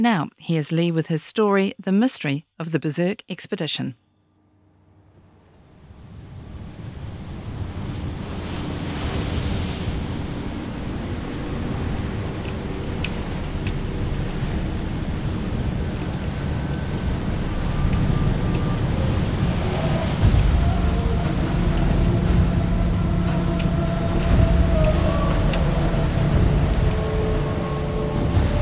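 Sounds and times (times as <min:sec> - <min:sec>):
speech: 0:00.0 - 0:04.0
heavy low rumbling buffeting: 0:04.3 - 0:28.6
strong storm wind roaring at sea: 0:04.9 - 0:28.6
stormy sea waves churning and crashing: 0:05.8 - 0:28.6.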